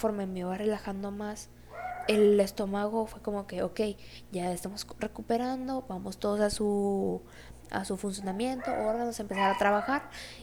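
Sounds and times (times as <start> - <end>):
speech: 0.0 - 10.4
dogs barking and yelping: 1.6 - 3.0, 7.6 - 10.4.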